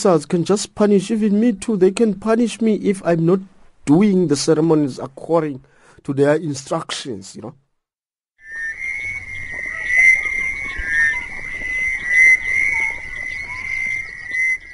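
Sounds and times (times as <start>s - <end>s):
speech: 0.0s - 7.6s
chorus of frogs croaking near a river: 8.4s - 14.7s.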